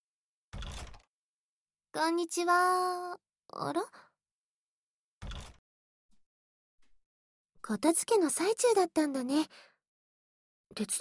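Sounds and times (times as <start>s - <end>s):
door being opened: 0.6s - 1.1s, 5.2s - 5.6s
speech: 2.0s - 4.1s, 7.6s - 9.7s, 10.7s - 10.9s.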